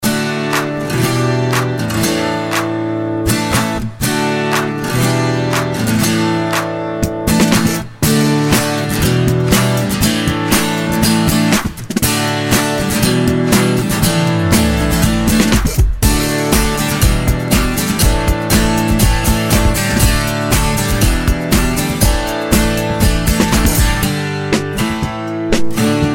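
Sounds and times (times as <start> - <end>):
guitar ringtone: 0.0 - 26.1.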